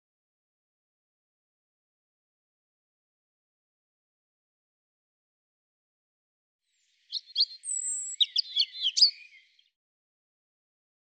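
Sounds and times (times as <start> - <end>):
European robin song: 6.8 - 9.7.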